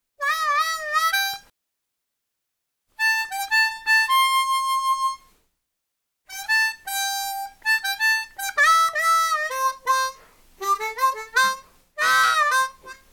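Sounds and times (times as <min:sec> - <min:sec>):
harmonica: 0:00.2 - 0:01.5, 0:03.0 - 0:05.3, 0:06.3 - 0:13.1.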